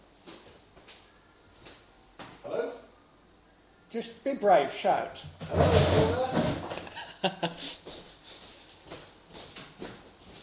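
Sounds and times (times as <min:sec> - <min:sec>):
speech: 0:03.9 - 0:06.5, 0:07.2 - 0:07.8
dull thumps against a door: 0:05.4 - 0:06.9.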